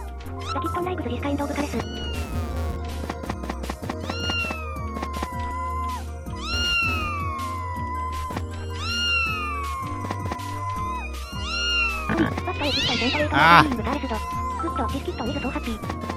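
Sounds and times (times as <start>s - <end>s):
steady music: 0.0s - 16.1s
cat meowing angrily with drawn-out yowls and caterwauling: 4.1s - 16.1s
person speaking: 12.1s - 15.1s.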